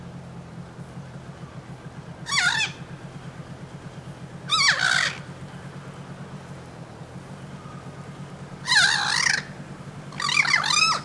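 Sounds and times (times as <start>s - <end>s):
steady low pulsing hum: 0.0s - 11.0s
harsh wavering bird caws: 1.3s - 6.2s, 7.4s - 11.0s.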